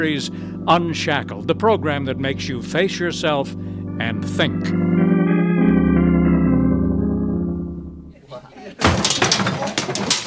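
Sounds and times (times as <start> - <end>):
speech: 0.0 - 5.0
sustained musical chord: 0.0 - 8.2
clattering, scattering debris: 8.8 - 10.2
display toppling over and crashing: 8.8 - 10.2.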